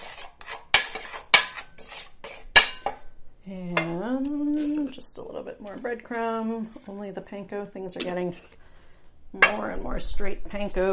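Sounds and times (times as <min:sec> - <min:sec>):
utensil scraping and clinking in a dish stirring flour, salt and pepper: 0:00.0 - 0:03.0, 0:04.1 - 0:07.1, 0:07.9 - 0:08.7
speech: 0:05.2 - 0:08.6, 0:09.3 - 0:10.9.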